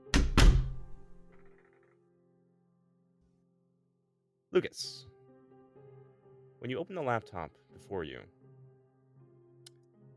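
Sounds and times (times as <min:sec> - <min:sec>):
door closing with a thunk: 0:00.0 - 0:01.4
speech: 0:04.6 - 0:05.1, 0:06.6 - 0:08.4.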